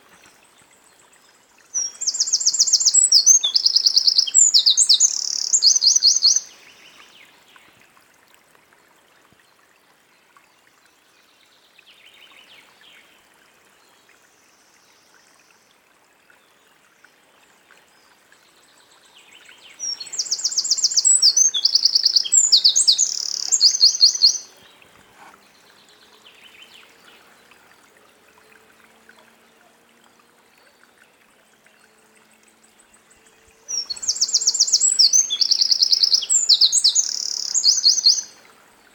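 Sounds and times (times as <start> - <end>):
Eurasian wren Troglodytes troglodytes: 1.8 - 6.5, 19.8 - 24.5, 33.7 - 38.4.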